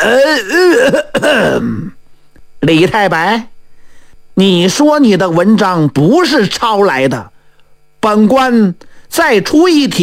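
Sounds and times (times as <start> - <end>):
speech: 0.0 - 2.0, 2.6 - 3.5, 4.4 - 7.3, 8.0 - 10.0
storyteller clearing throat with a deliberate exaggerated cough: 0.0 - 2.0.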